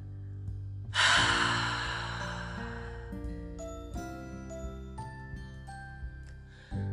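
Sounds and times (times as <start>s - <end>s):
soft sustained music with gentle chime-like notes: 0.0s - 6.9s
deep breath exhaled through the mouth: 0.9s - 3.4s.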